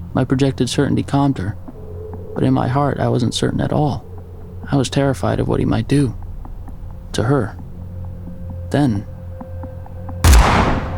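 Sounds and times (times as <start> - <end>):
speech: 0.1 - 1.6, 2.4 - 4.1, 4.7 - 6.2, 7.2 - 7.6, 8.7 - 9.1
shotgun blast: 10.2 - 10.9.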